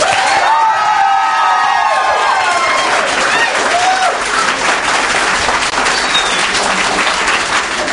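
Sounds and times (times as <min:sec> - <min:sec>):
whoops and cheers: 0:00.0 - 0:04.3
large audience applauding: 0:00.0 - 0:07.9.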